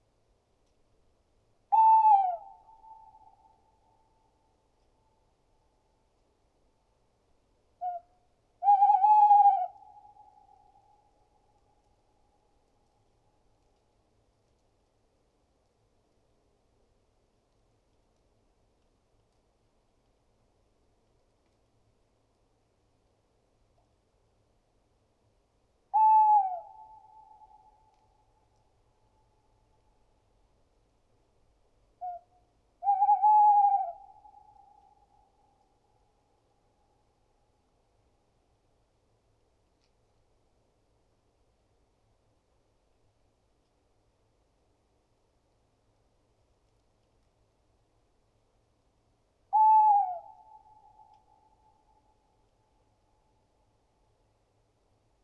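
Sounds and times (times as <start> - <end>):
tawny owl Strix aluco: 1.7 - 4.1, 7.8 - 11.3, 25.9 - 28.2, 32.0 - 35.6, 49.5 - 52.2.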